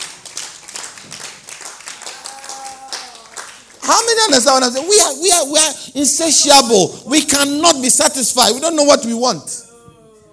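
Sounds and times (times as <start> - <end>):
small audience clapping sparsely: 0.0 - 5.2
speech: 3.9 - 9.7.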